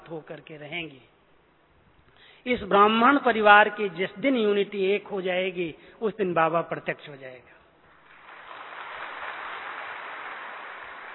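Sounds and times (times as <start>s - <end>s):
speech: 0.1s - 1.2s, 2.4s - 7.6s
crowd applauding: 8.0s - 11.1s.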